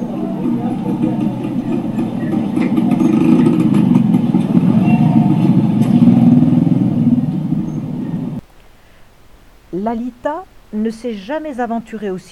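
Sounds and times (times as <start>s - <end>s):
heavy traffic roar of trucks on a busy highway: 0.0s - 8.4s
speech: 9.9s - 12.2s.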